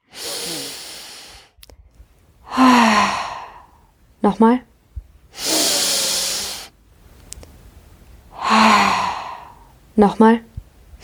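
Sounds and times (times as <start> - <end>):
sighing exhale with a faint voiced tone: 0.0 - 1.6, 2.4 - 3.8, 5.4 - 6.7, 8.3 - 9.7
deep breaths during a guided conscious-breathing exercise: 0.0 - 4.0, 5.3 - 6.8, 8.2 - 9.8
speech: 4.3 - 4.7, 10.0 - 10.5.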